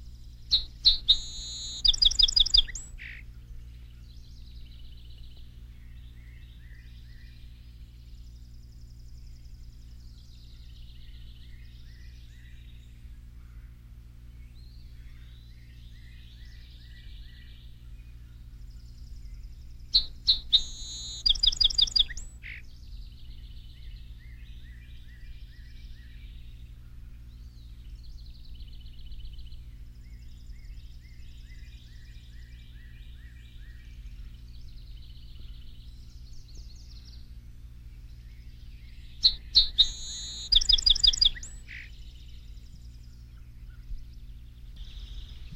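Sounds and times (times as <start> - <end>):
song sparrow singing high phrases with buzzy trills: 0.0 - 45.5
steady low hum: 0.0 - 45.5
soft chirps: 0.5 - 3.2, 19.2 - 22.5, 39.2 - 41.9.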